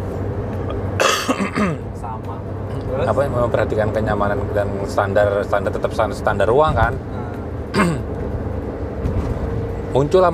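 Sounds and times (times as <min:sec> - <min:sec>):
low hum: 0:00.0 - 0:10.3
person coughing: 0:01.0 - 0:01.9, 0:07.7 - 0:08.1
speech: 0:01.6 - 0:08.0, 0:10.0 - 0:10.3.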